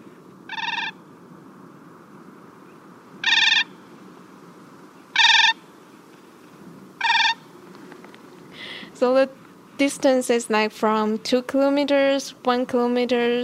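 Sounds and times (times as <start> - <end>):
Siberian crane flight calls over the Siberian tundra: 0.0 - 1.5, 2.6 - 9.8
speech: 9.0 - 13.4.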